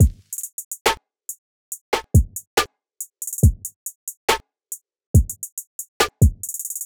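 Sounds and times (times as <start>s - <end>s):
trap drum loop at 140 bpm: 0.0s - 1.0s, 1.7s - 4.4s, 5.2s - 6.8s.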